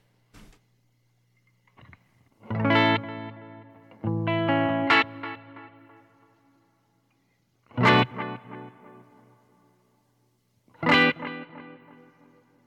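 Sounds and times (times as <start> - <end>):
electric guitar strumming chords through a delay and reverb pedal: 2.4 - 6.0, 7.7 - 9.4, 10.8 - 12.5.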